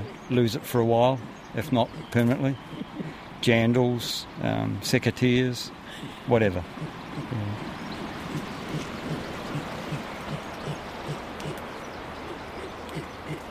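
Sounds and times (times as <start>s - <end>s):
steady hiss of background noise: 0.0s - 13.4s
speech: 0.3s - 7.6s
weka giving a low pulsed food call in the Marlborough Sounds, New Zealand: 1.2s - 3.2s, 5.9s - 13.4s.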